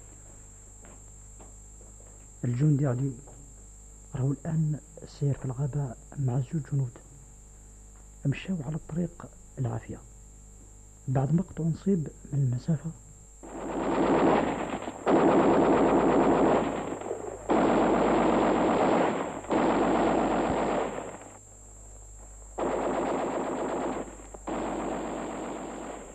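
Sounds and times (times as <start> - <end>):
speech: 2.4 - 3.3, 4.1 - 7.0, 8.2 - 10.1, 11.1 - 13.0
machine gun fire in a battle: 13.4 - 21.4, 22.5 - 26.1.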